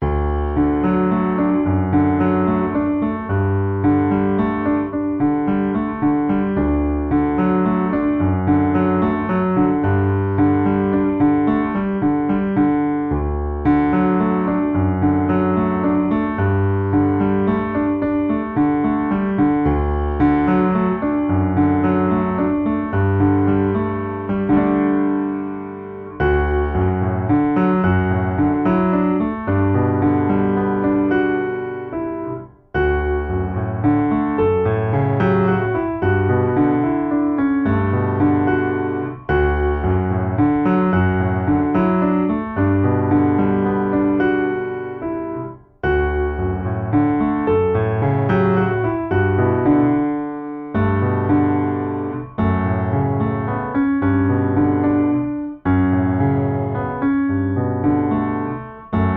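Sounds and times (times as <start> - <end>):
gentle morning piano music: 0.0 - 59.1.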